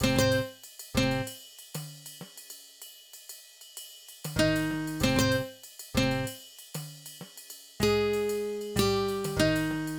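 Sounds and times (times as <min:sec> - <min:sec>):
acoustic guitar: 0:00.0 - 0:01.3, 0:04.4 - 0:06.3, 0:07.8 - 0:09.9.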